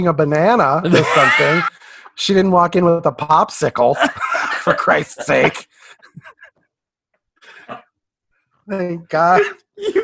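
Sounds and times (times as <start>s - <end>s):
speech: 0.0s - 6.3s, 8.7s - 10.0s
laughter: 0.9s - 1.9s, 4.0s - 6.6s
person coughing roughly: 9.4s - 10.0s.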